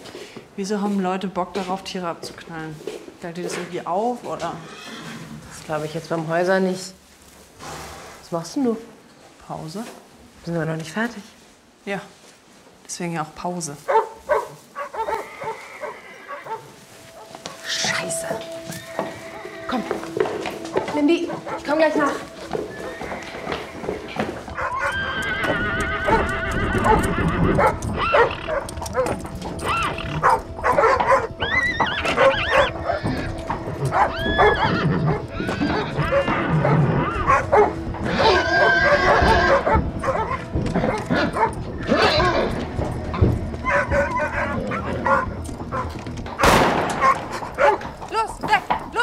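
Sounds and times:
speech: 0:00.6 - 0:04.9, 0:05.7 - 0:07.0, 0:08.3 - 0:08.9, 0:09.5 - 0:12.2, 0:12.9 - 0:14.0
dogs barking and yelping: 0:13.9 - 0:17.6, 0:20.6 - 0:22.4, 0:24.5 - 0:25.2, 0:26.0 - 0:48.7
animal noises: 0:13.9 - 0:48.8.

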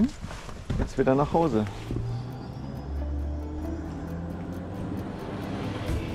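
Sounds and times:
speech: 0:00.0 - 0:00.2, 0:01.0 - 0:02.0
helicopter engine drone in flight: 0:01.6 - 0:06.1.

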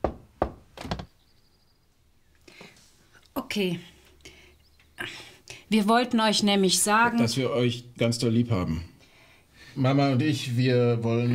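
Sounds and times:
firm knocks on a solid surface: 0:00.0 - 0:01.1
speech: 0:03.6 - 0:03.9, 0:05.7 - 0:08.9, 0:09.8 - 0:11.3.

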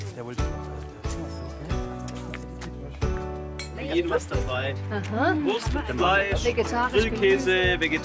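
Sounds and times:
speech: 0:00.2 - 0:00.5, 0:03.9 - 0:08.0
wine glasses clinking in a toast at a gathering by the Neckar river: 0:03.5 - 0:04.1.

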